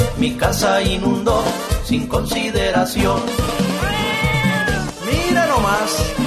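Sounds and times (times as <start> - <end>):
speech: 0.2 - 3.6, 5.3 - 6.2
cat meowing: 3.7 - 5.0.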